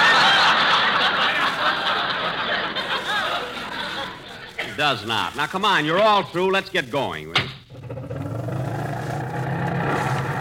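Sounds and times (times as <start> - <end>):
laughter: 0.0 - 5.4
speech: 4.8 - 7.6
old unrepaired car engine running roughly: 7.7 - 10.3.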